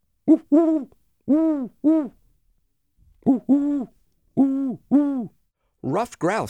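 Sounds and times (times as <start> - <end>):
owl hooting: 0.3 - 2.2, 3.2 - 5.3
speech: 0.3 - 2.2, 3.2 - 6.4.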